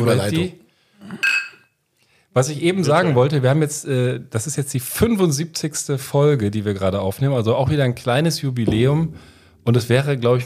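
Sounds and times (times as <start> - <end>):
speech: 0.0 - 1.4, 2.4 - 10.4
glasses clinking together in a toast: 1.2 - 1.7.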